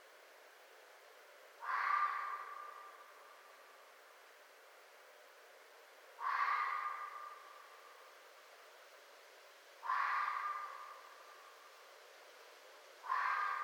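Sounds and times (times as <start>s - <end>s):
faint steady hiss: 0.0s - 13.6s
red fox screaming: 1.6s - 3.0s, 6.2s - 7.5s, 9.8s - 11.2s, 13.0s - 13.6s.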